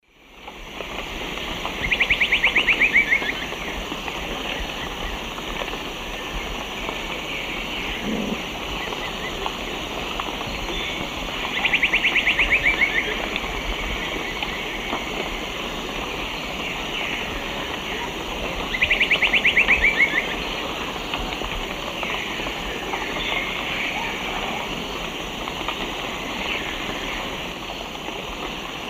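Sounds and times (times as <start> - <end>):
Dendrocolaptes certhia song in South American Eastern Lowlands: 1.4 - 28.0.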